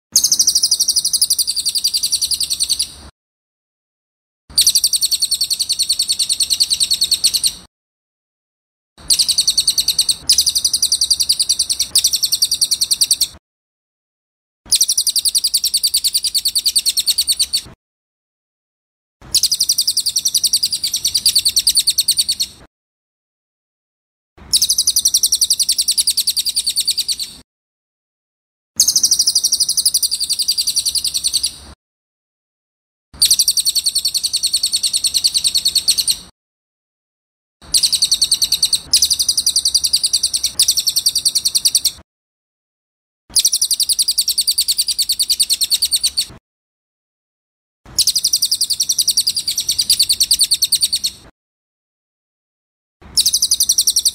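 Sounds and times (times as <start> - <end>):
cililin bird singing loud clear rolling song: 0.2 - 2.9, 4.6 - 7.6, 9.0 - 13.4, 14.7 - 17.6, 19.3 - 22.5, 24.5 - 27.4, 28.8 - 31.6, 33.2 - 36.2, 37.7 - 42.0, 43.4 - 46.3, 48.0 - 51.1, 53.2 - 54.1.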